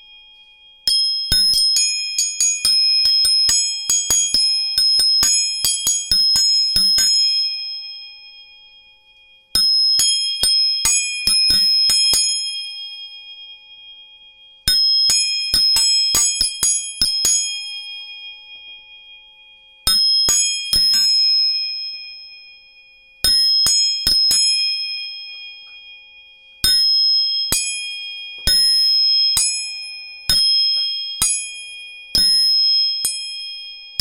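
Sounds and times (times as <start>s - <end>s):
tuning fork struck with bright bell-like ring: 0.0s - 34.0s.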